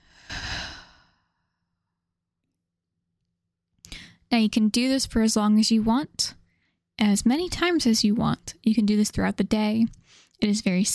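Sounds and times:
deep exhale after a belly breath in a breathing exercise: 0.0s - 1.4s
speech: 4.3s - 6.4s, 7.0s - 10.9s.

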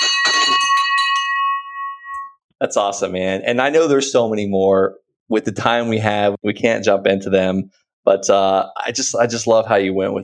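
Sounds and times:
victory bell ringing: 0.0s - 2.4s
speech: 2.6s - 10.2s.

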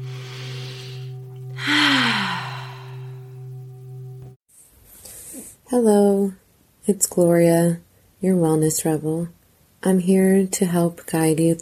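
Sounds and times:
deep breath drawn in during a guided meditation: 0.0s - 3.2s
low sustained drone: 0.0s - 4.4s
speech: 5.7s - 11.6s.

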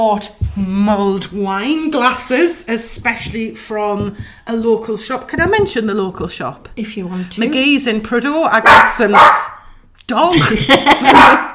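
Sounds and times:
speech: 0.0s - 9.4s, 10.1s - 11.5s
dog barking and yelping: 8.6s - 9.6s, 11.0s - 11.5s
laughter: 10.3s - 11.5s.

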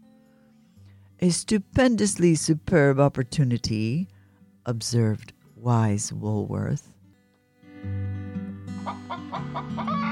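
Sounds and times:
speech: 1.2s - 7.0s
hen clucking in short throaty bursts: 8.8s - 10.0s.

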